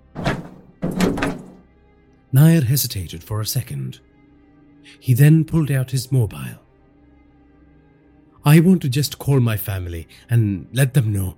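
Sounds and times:
rusty warehouse door opening with dull heavy thunks: 0:00.0 - 0:01.6
speech: 0:02.3 - 0:04.1, 0:04.8 - 0:06.6, 0:08.4 - 0:11.3.

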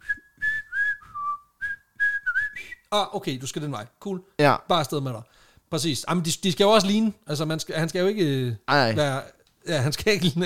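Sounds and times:
person whistling a short password tune in a video game: 0:00.0 - 0:02.8
speech: 0:02.9 - 0:10.4.

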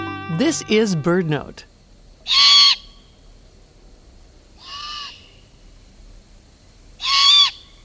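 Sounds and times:
speech: 0:00.5 - 0:01.7, 0:02.2 - 0:02.5
young great horned owls giving begging screeches: 0:02.2 - 0:03.0, 0:04.6 - 0:05.2, 0:07.0 - 0:07.7.

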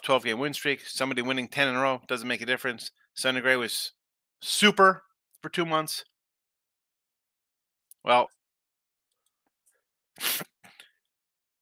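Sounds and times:
speech: 0:00.0 - 0:06.1, 0:08.0 - 0:08.4, 0:10.2 - 0:10.5
person sneezing: 0:10.2 - 0:10.6.

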